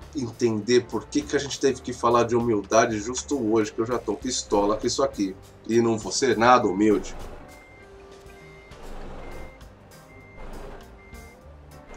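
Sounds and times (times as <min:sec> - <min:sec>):
speech: 0:00.2 - 0:07.4
truck reversing alarm beeping while parking: 0:06.2 - 0:11.9
idling truck engine rumble: 0:07.0 - 0:07.8, 0:08.4 - 0:11.1.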